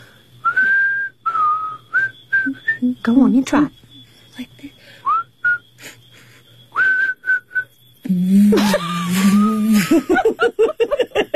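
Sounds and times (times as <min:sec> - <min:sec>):
faint low hum: 0:00.0 - 0:11.3
person whistling: 0:00.4 - 0:02.8, 0:05.0 - 0:05.6, 0:06.8 - 0:10.0
speech: 0:02.8 - 0:03.8, 0:08.5 - 0:11.0
laughter: 0:08.5 - 0:11.3.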